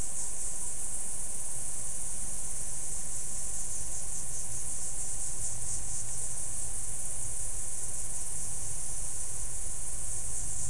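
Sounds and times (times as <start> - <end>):
insect chorus drone: 0.0 - 10.6.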